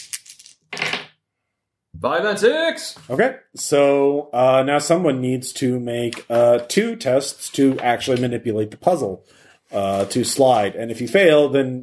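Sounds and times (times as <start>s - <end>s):
dice clattering and rattling: 0.0s - 1.2s
speech: 2.0s - 11.8s.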